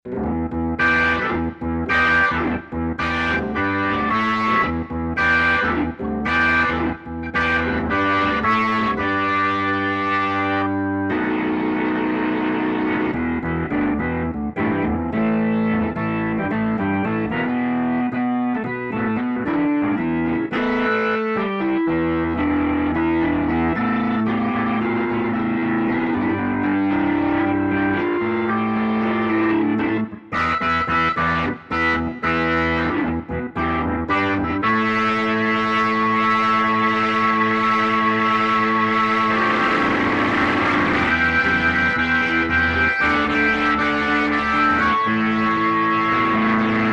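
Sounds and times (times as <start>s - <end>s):
overdriven rotary organ synthesizer patch: 0.2s - 46.9s.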